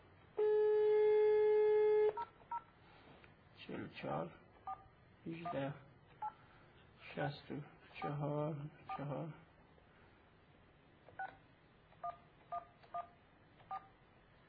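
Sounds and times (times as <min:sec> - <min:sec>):
long steady telephone tone: 0:00.3 - 0:02.2
speech: 0:03.8 - 0:04.5, 0:05.2 - 0:05.9, 0:07.2 - 0:09.4
telephone keypad DTMF beeps: 0:12.0 - 0:13.9.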